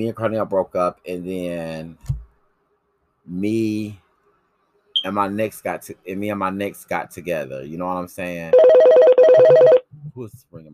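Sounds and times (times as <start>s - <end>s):
speech: 0.0s - 2.2s, 3.3s - 4.0s, 5.0s - 10.7s
electronic doorbell trill: 8.6s - 9.8s.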